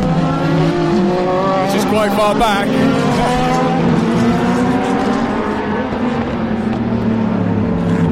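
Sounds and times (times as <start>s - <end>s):
petrol-engined Corvette race cars rumbling past: 0.0s - 8.0s
speech: 2.0s - 3.4s.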